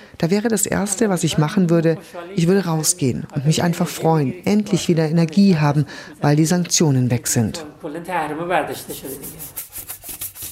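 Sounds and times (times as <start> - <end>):
speech: 0.2 - 9.9
scrubbing a washbasin in an office: 8.9 - 10.4.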